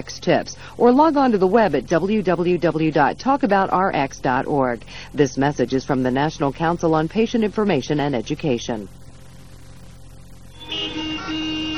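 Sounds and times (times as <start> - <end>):
speech: 0.2 - 9.0
car horns honking in a traffic jam: 10.6 - 11.7.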